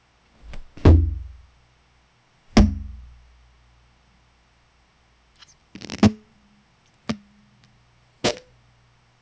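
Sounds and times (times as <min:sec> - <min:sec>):
harsh unpleasant blunt impact: 0:00.4 - 0:01.4, 0:02.6 - 0:03.2.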